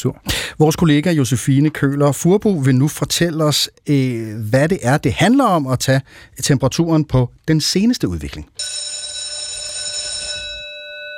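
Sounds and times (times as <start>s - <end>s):
speech: 0.0s - 8.9s
school bell ringing at the end of class: 8.6s - 11.1s.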